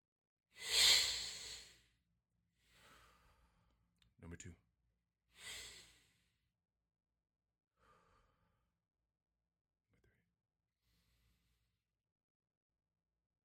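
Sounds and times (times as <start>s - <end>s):
person taking deep breaths: 0.6s - 1.8s, 2.6s - 3.6s, 5.4s - 6.3s.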